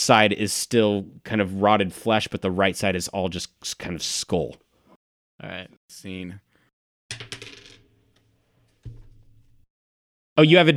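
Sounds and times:
speech: 0.0 - 4.6, 5.4 - 6.5, 7.1 - 7.4, 10.4 - 10.7
polyhedral die rolling on table: 7.1 - 9.6.

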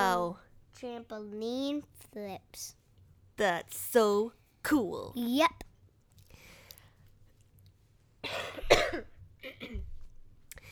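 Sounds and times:
speech: 0.1 - 2.8, 3.4 - 5.7, 8.2 - 9.9
muffled cough stifled behind a hand: 8.2 - 9.9.

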